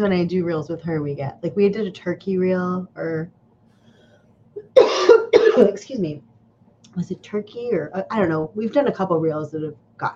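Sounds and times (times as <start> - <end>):
speech: 0.0 - 3.4, 4.8 - 6.3, 7.0 - 10.1
faint breath: 3.7 - 4.4
person coughing harshly: 4.6 - 5.8.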